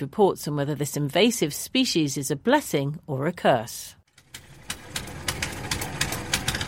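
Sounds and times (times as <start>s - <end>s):
speech: 0.0s - 4.0s
rhythmic clattering knocks of a fishing boat engine: 4.1s - 6.6s
fishing boat engine idling on the Yatta River in Bolivia: 4.2s - 6.6s.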